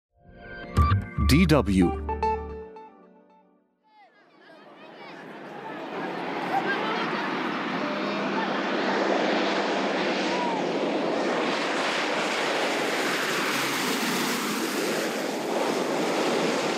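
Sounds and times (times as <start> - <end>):
speech: 1.3 - 2.0
murmur of voice: 4.0 - 9.3
International Red Cross propeller plane engine roar arriving overhead at Kagabandoro refugee camp: 4.8 - 16.7.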